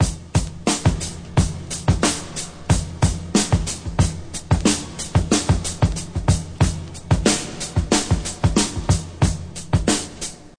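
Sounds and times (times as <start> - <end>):
breakbeat drum loop in F key with kick tuned to F: 0.0 - 10.5.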